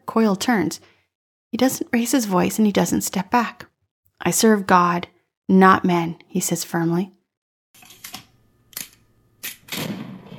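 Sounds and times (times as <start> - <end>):
speech: 0.2 - 0.9, 1.5 - 7.2
sharp gunshot-like cracks: 9.7 - 10.3.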